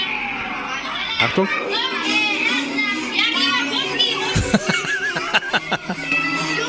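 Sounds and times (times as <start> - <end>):
chattering voices: 0.0 - 6.6
speech: 1.2 - 1.8
loud party music from a tinny phone video inside an airplane disco: 1.8 - 6.6
laughter: 4.3 - 6.1.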